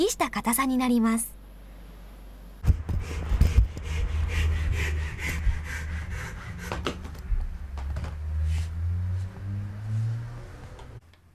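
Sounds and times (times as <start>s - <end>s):
speech: 0.0s - 1.4s
low hum: 0.0s - 9.4s
handsaw cutting a small kuromoji wood branch: 2.9s - 7.2s.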